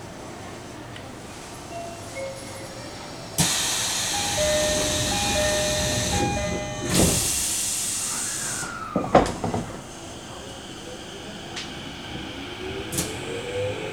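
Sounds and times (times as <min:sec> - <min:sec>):
commuter train doors closing at a station platform in Japan: 0:01.6 - 0:13.9
pneumatic hiss of train doors: 0:03.4 - 0:13.9
steady train hum: 0:03.4 - 0:13.9.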